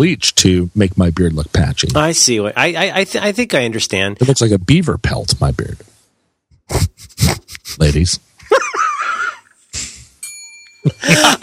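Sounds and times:
speech: 0:00.0 - 0:05.9, 0:06.7 - 0:08.8, 0:10.8 - 0:11.4
laughter: 0:07.3 - 0:09.9, 0:10.8 - 0:11.4
small bells touched lightly ringing: 0:10.2 - 0:11.4.

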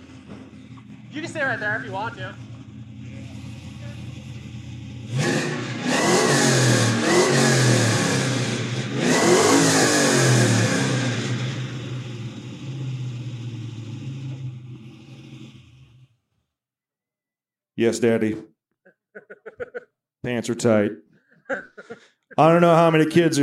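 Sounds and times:
old Chevy car engine of about 500 horsepower starting and revving: 0:00.0 - 0:16.3
speech: 0:01.2 - 0:02.5, 0:05.1 - 0:05.4, 0:17.8 - 0:18.5, 0:20.2 - 0:23.4
laughter: 0:18.8 - 0:20.0, 0:21.2 - 0:23.4.

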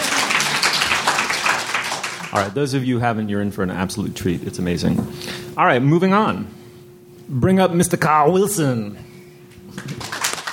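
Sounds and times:
audience clapping: 0:00.0 - 0:02.6, 0:09.7 - 0:10.5
speech: 0:02.3 - 0:06.6, 0:07.3 - 0:09.1.

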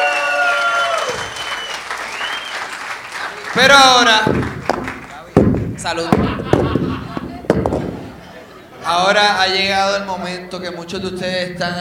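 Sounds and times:
person cheering or whooping: 0:00.0 - 0:01.6
crowd applauding: 0:00.0 - 0:05.3
speech: 0:03.6 - 0:04.6, 0:05.8 - 0:06.7, 0:08.9 - 0:11.7
laughter: 0:05.9 - 0:08.9.

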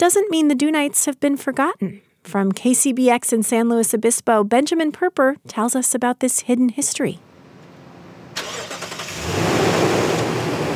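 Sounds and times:
speech: 0:00.0 - 0:07.3
four-wheel drive pickup truck engine starting and revving on sand dunes: 0:07.2 - 0:10.7.

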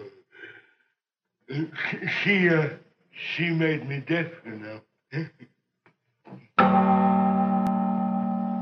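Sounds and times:
speech: 0:01.6 - 0:05.5
large cathedral bell strike: 0:06.6 - 0:08.5.

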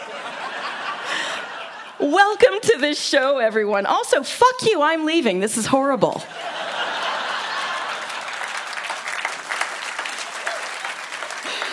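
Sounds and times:
laughter: 0:00.0 - 0:02.4, 0:06.2 - 0:11.7
speech: 0:02.0 - 0:06.5
hundreds of people clapping: 0:06.4 - 0:11.7.

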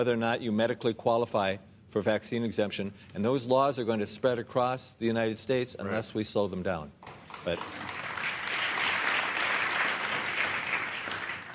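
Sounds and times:
speech: 0:00.0 - 0:08.0
studio audience applause: 0:07.2 - 0:11.5.

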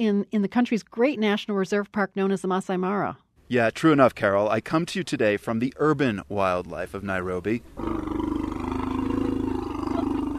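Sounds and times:
speech: 0:00.0 - 0:08.3
baby elephant rumbling roar at an orphanage near Nairobi Kenya: 0:07.7 - 0:10.3.

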